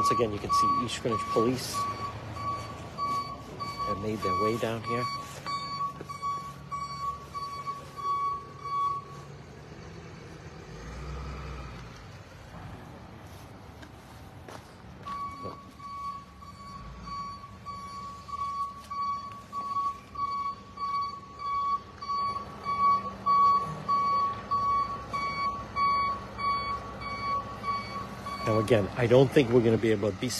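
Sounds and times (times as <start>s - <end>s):
speech: 0.0s - 2.0s, 3.9s - 5.2s, 28.7s - 30.3s
tow truck backup beep at a police scene in East Greenwich: 0.0s - 9.2s, 15.0s - 28.9s
low rumbling tow truck engine: 0.0s - 30.3s
outdoor noise: 0.0s - 30.3s.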